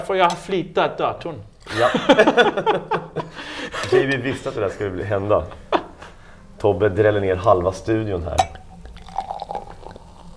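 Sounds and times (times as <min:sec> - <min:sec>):
speech: 0:00.0 - 0:05.7, 0:06.6 - 0:08.6
laughter: 0:01.7 - 0:06.2
drink pouring into a glass: 0:08.4 - 0:10.3.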